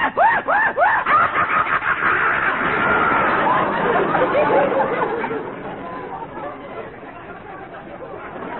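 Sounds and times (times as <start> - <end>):
voice imitating a cackling screechy hyena laugh: 0.0 - 5.2.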